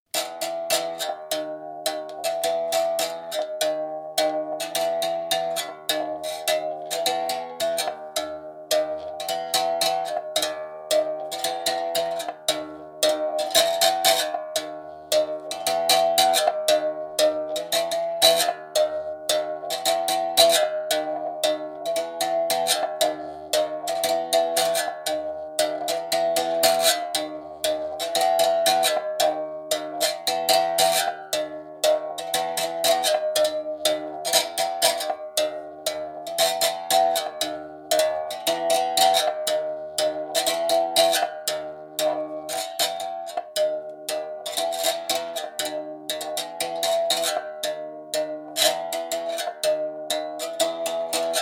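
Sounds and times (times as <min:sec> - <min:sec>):
berimbau playing simple music: 0:00.1 - 0:51.4.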